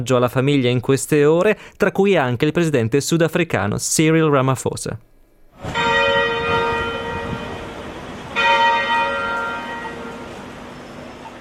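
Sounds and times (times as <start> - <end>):
speech: 0.0 - 5.1
large cathedral church bells ringing: 5.7 - 11.3.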